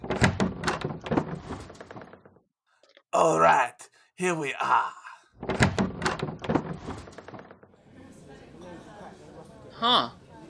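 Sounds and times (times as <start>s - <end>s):
door opening with clunky rattling knocks and scrapes: 0.0s - 2.4s, 5.4s - 7.8s
speech: 3.2s - 5.6s, 9.8s - 10.2s.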